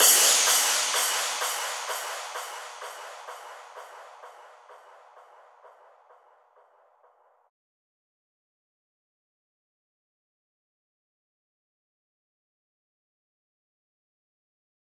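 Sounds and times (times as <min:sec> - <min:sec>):
big room house crash cymbal in D sharp: 0:00.0 - 0:06.4.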